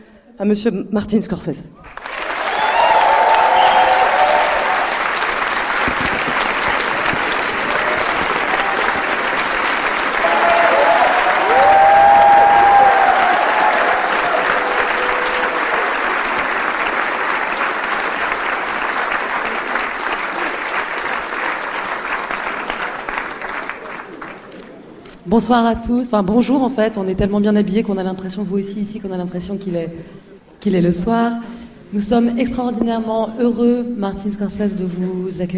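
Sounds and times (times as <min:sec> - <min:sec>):
speech: 0:00.4 - 0:02.0, 0:25.4 - 0:35.5
large audience applause welcoming a guest onto a stage: 0:01.9 - 0:24.9.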